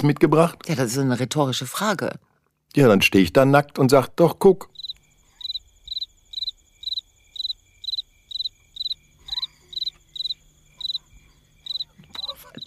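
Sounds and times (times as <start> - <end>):
speech: 0.0 - 4.8
crickets chirping: 4.2 - 12.6.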